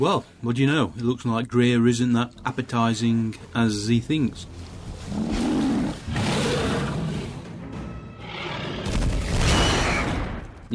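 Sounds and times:
speech: 0.0s - 5.5s
sustained rumbling roar after explosion: 5.1s - 7.6s
loud deep explosion: 8.8s - 10.6s.

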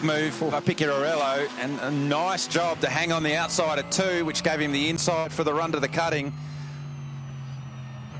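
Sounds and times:
speech: 0.0s - 6.6s
race car engine droning off the throttle through a corner: 0.0s - 8.1s.

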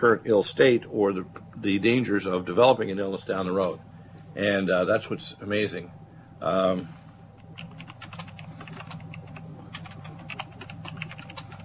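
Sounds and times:
speech: 0.0s - 7.0s
clicking of computer keys being typed on: 7.4s - 11.6s.

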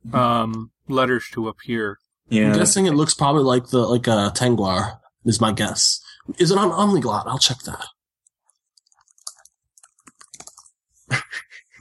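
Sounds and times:
speech: 0.1s - 8.0s
frantic typing on a keyboard: 8.5s - 10.8s.

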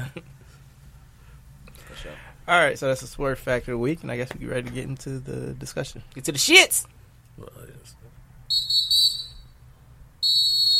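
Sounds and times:
speech: 2.5s - 8.7s
whistle blown in loud shrill blasts: 8.5s - 9.6s, 10.2s - 10.7s.

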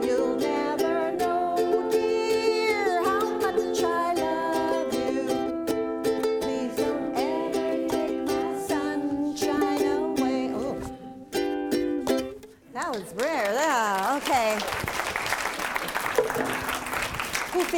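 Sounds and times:
person singing a melody with wavering vibrato: 0.0s - 11.4s
audience applause: 13.2s - 17.7s.

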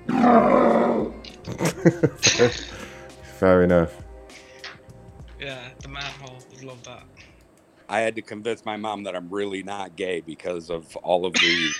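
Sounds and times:
sea lion throaty roar: 0.0s - 1.4s
speech: 0.2s - 0.6s, 1.8s - 2.7s, 3.4s - 4.0s, 7.9s - 11.7s
laughter: 1.3s - 2.9s, 11.4s - 11.7s.

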